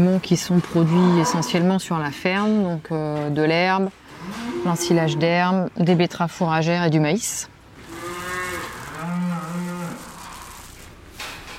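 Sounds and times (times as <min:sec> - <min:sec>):
speech: 0:00.0 - 0:07.5
Normandy dairy cow mooing in a barn: 0:00.8 - 0:01.7, 0:04.2 - 0:05.5, 0:07.8 - 0:10.6.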